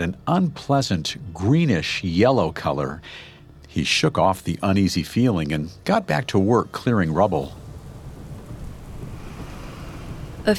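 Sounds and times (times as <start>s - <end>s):
speech: 0.0s - 7.6s
gusting wind with a deep rumble: 6.3s - 10.5s
steady heavy rain hissing: 6.4s - 10.5s.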